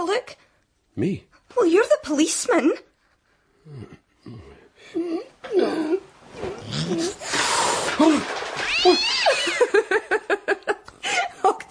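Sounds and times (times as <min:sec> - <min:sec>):
speech: 0:00.2 - 0:00.4, 0:01.0 - 0:02.9, 0:03.6 - 0:11.7
cat meowing and caterwauling: 0:08.7 - 0:09.6.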